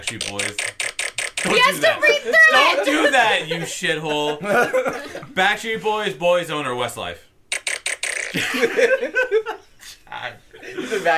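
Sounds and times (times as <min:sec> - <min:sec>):
speech: 0:00.0 - 0:00.7, 0:01.4 - 0:07.3, 0:08.3 - 0:11.1
laughter: 0:02.8 - 0:05.4, 0:08.3 - 0:11.1
raspberry fart noises blown into a microphone: 0:07.5 - 0:08.4.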